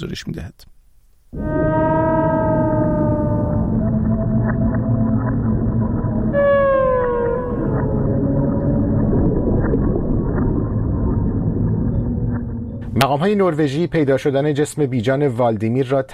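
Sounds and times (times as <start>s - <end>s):
speech: 0.0s - 1.5s, 13.0s - 16.1s
beluga whale clicks: 0.7s - 13.0s
low underwater rumble: 1.3s - 14.5s
beluga whale descending whistles: 1.4s - 9.6s.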